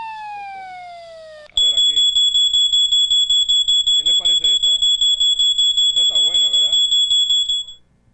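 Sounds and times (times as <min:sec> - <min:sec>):
smoke detector alarm beep: 0:01.6 - 0:07.9.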